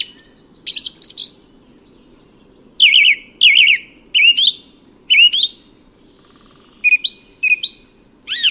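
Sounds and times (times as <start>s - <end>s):
song thrush singing whistled phrases: 0.0s - 1.7s, 2.8s - 5.7s, 6.8s - 8.4s.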